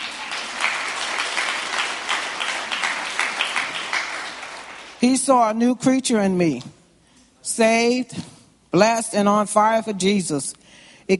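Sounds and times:
church audience applauding: 0:00.0 - 0:05.0
speech: 0:05.0 - 0:06.8, 0:07.4 - 0:11.1.

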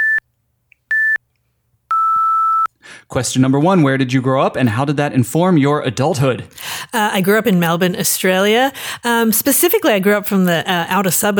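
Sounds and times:
short electronic timer beeps: 0:00.0 - 0:00.2, 0:00.9 - 0:01.2
speech: 0:03.1 - 0:11.3.

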